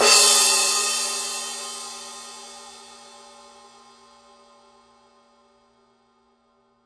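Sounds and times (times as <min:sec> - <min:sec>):
Paiste 2002 power crash edge cymbal: 0:00.0 - 0:05.0.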